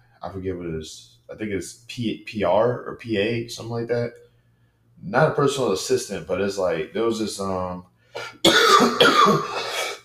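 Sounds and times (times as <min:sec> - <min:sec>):
speech: 0:00.2 - 0:04.2, 0:05.0 - 0:09.8
dry coughs from someone recovering from a cough: 0:08.2 - 0:10.0.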